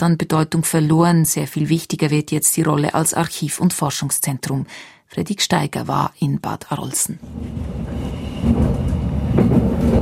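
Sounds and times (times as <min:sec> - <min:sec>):
speech: 0:00.0 - 0:10.0
regional train rumbling along the tracks: 0:07.2 - 0:10.0.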